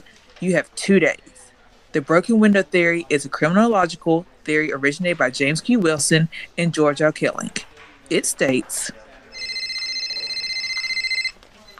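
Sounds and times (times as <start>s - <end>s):
speech: 0.4s - 1.3s, 2.0s - 9.0s
phone ringtone for an incoming call: 9.3s - 11.4s.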